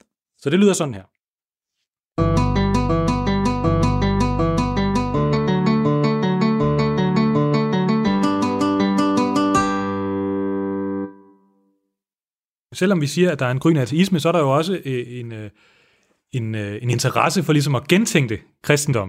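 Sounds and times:
speech: 0:00.4 - 0:01.1, 0:12.8 - 0:19.0
minor-key Alberti bass figure played on guitar: 0:02.2 - 0:11.4.

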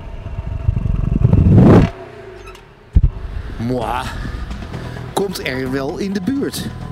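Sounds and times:
V8 car engine starting and revving: 0:00.0 - 0:05.2
speech: 0:03.7 - 0:04.3, 0:05.2 - 0:06.9.

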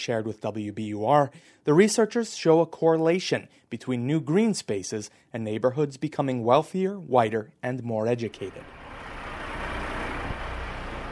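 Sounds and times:
speech: 0:00.0 - 0:08.8
dump trucks and construction traffic rumbling on waterfront: 0:08.5 - 0:11.1.

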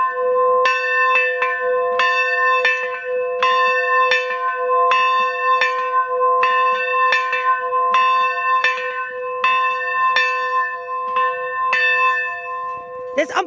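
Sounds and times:
church bell ringing outside the church: 0:00.0 - 0:13.4.

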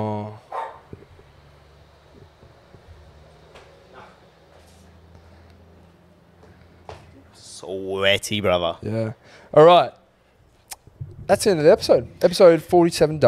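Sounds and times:
low steady hum: 0:00.0 - 0:13.2
dog barking: 0:00.5 - 0:00.9, 0:03.9 - 0:04.3
speech: 0:07.7 - 0:10.0, 0:11.3 - 0:13.2.

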